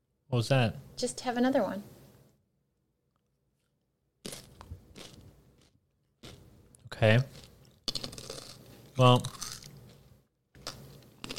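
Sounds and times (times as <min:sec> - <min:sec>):
speech: 0:00.3 - 0:01.9, 0:07.0 - 0:07.4, 0:09.0 - 0:09.4
chip-like snack being chewed: 0:04.2 - 0:11.3.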